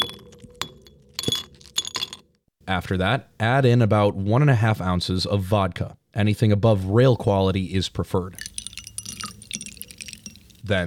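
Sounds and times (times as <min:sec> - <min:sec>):
ice cubes clinking and rattling against a highball glass: 0:00.0 - 0:02.2, 0:08.4 - 0:10.6
speech: 0:02.7 - 0:08.5, 0:10.7 - 0:10.8.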